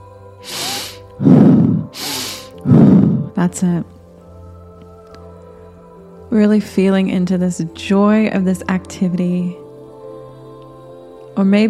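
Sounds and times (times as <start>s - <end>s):
person exhaling during a guided breathing exercise: 0.4s - 3.4s
person inhaling during a guided breathing exercise: 0.4s - 3.4s
speech: 3.4s - 4.0s, 6.3s - 9.6s, 11.4s - 11.6s.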